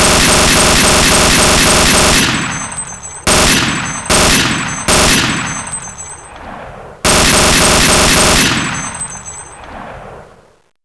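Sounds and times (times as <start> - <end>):
MG-42 machine gun burst: 0.0 - 6.1, 7.1 - 9.4.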